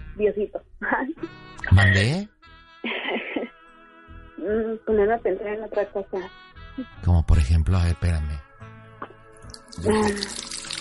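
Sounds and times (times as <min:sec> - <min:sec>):
speech: 0:00.2 - 0:03.2, 0:04.4 - 0:08.5, 0:09.8 - 0:10.4
water running from a tap: 0:09.4 - 0:10.7.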